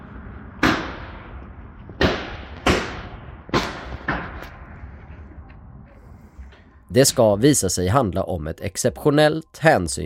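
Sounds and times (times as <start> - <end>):
gunshots outdoors outside a hair salon: 0.5 - 1.3, 2.0 - 4.7
speech: 6.9 - 10.0.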